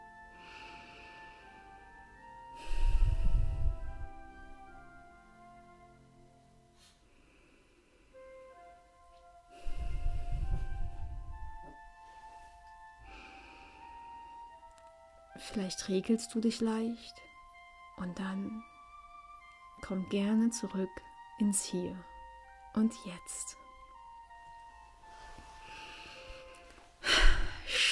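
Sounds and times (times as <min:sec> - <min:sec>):
soft sustained music: 0:00.0 - 0:27.9
slow deep breaths during a guided relaxation exercise: 0:00.3 - 0:04.2, 0:06.8 - 0:08.3, 0:09.5 - 0:10.8, 0:13.0 - 0:14.3, 0:25.0 - 0:27.8
speech: 0:15.4 - 0:17.3, 0:18.0 - 0:18.7, 0:19.8 - 0:22.1, 0:22.8 - 0:23.6.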